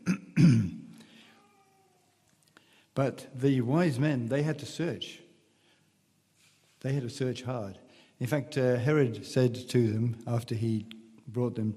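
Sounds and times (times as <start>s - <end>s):
man clearing his throat during a sermon: 0.0s - 0.9s
speech: 3.0s - 5.2s, 6.8s - 11.7s.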